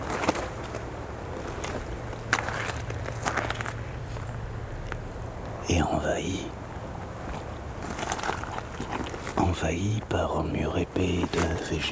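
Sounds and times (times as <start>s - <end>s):
soft footsteps on a small waterlogged overgrown path: 0.0s - 5.6s, 6.6s - 9.7s, 11.0s - 11.9s
steady low outdoor rumble: 0.0s - 11.9s
speech: 5.8s - 6.6s, 9.6s - 11.9s.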